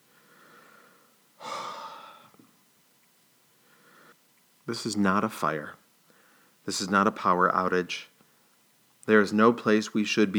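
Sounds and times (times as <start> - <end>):
soft breath: 0.0 - 2.5, 3.5 - 4.2, 6.0 - 6.6
long breathy exhale: 0.1 - 2.4
speech: 4.7 - 5.8, 6.6 - 8.1, 9.0 - 10.3.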